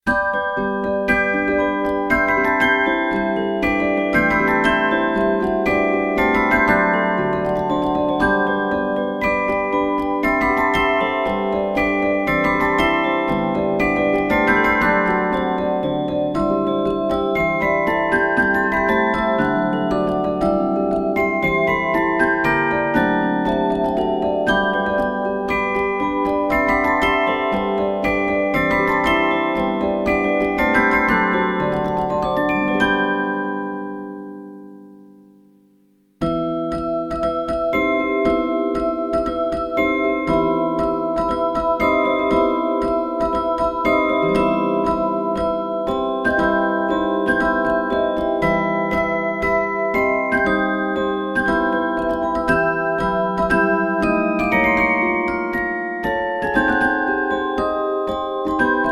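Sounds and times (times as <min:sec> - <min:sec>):
music machine left cylinder: 0:00.1 - 0:35.6, 0:36.2 - 0:58.9.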